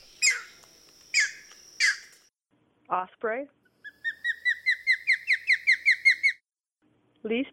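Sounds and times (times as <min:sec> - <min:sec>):
green heron giving harsh raspy squawks: 0:00.2 - 0:00.5, 0:01.2 - 0:02.1, 0:03.8 - 0:06.4
speech: 0:02.9 - 0:03.6, 0:07.2 - 0:07.5.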